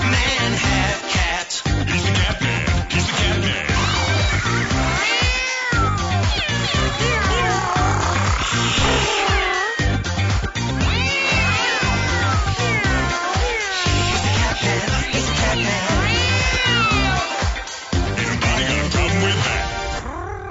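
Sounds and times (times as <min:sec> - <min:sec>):
dense steady musical backing: 0:00.0 - 0:20.1
many voices imitating cats with meows and wailing: 0:02.3 - 0:10.0, 0:10.7 - 0:20.4.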